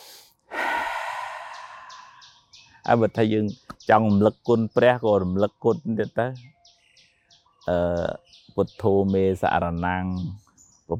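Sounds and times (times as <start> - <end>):
deep calming breathing before an exam: 0.0 - 2.8
speech: 2.8 - 6.6, 7.7 - 10.9.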